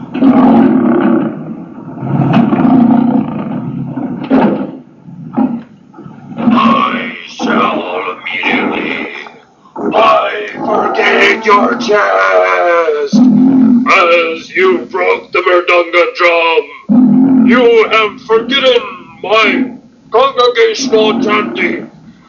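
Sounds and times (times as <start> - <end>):
lion-headed beast growling and roaring: 0.0 - 4.5, 5.3 - 14.1, 16.9 - 18.8, 20.7 - 21.9
speech: 11.5 - 12.9, 14.0 - 21.9.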